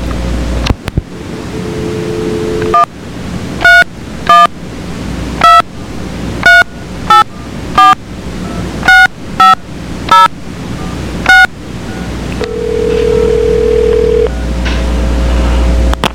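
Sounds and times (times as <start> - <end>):
telephone line noise hiss: 0.0 - 16.1
sustained lower telephone tone as the call connects: 1.4 - 2.9, 11.9 - 14.6
telephone keypad tones: 8.9 - 10.3, 11.3 - 14.4.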